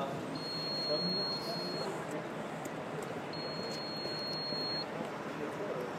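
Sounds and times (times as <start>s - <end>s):
street-like noise: 0.0s - 5.9s
door intercom buzzer at doctor's office entrance ringing: 0.4s - 1.9s, 3.4s - 4.9s
speech: 1.0s - 1.4s.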